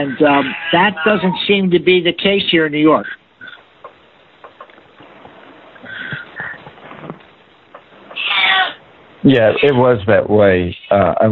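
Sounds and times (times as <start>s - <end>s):
speech: 0.0s - 3.2s, 9.2s - 11.3s
cat meowing: 8.1s - 8.8s.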